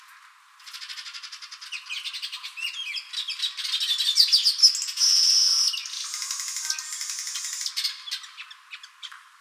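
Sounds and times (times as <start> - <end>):
male Ploceus cucullatus village weaver song with various trills: 1.8 - 9.1.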